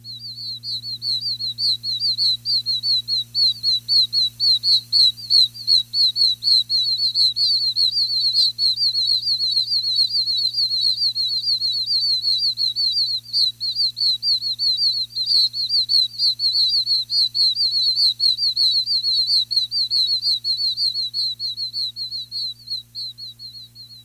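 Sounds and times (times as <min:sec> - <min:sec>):
oak toad breeding call: 0:00.0 - 0:24.0.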